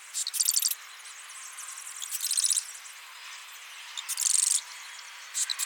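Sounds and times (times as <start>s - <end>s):
Cistothorus palustris marsh wren chattering trills: 0.2s - 2.9s, 3.9s - 5.6s.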